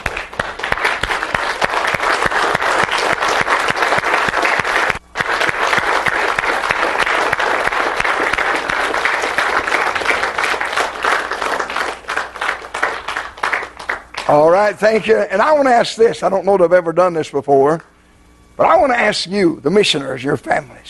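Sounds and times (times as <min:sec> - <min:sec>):
large audience applauding in a church: 0:00.0 - 0:14.7
speech: 0:14.8 - 0:17.9, 0:18.6 - 0:20.8.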